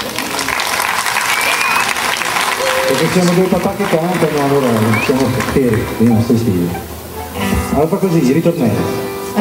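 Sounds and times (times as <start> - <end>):
audience applause: 0.0 - 6.8
speech: 3.0 - 6.9, 7.7 - 9.1.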